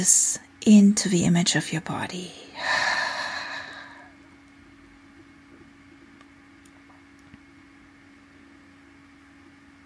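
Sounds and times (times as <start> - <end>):
speech: 0.0 - 2.9
deep airy inhale and exhale: 2.5 - 4.2.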